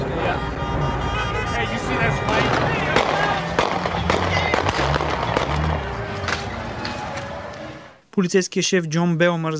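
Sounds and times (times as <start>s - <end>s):
crowd murmur on a noisy street: 0.0s - 8.0s
people shouting: 1.2s - 7.4s
gunshots during street riot: 2.2s - 6.6s
speech: 8.2s - 9.5s.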